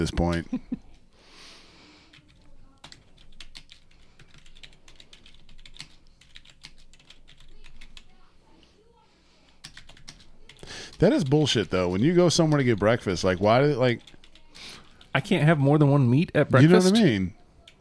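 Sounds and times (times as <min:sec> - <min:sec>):
speech: 0:00.0 - 0:00.8, 0:11.0 - 0:14.2, 0:15.1 - 0:17.4
typing on a computer keyboard: 0:02.1 - 0:08.2, 0:09.5 - 0:15.1, 0:17.6 - 0:17.8.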